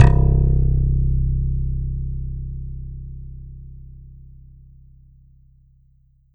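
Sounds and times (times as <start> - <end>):
Kurzweil K2000 dual bass synthesizer note C1: 0.0 - 3.5.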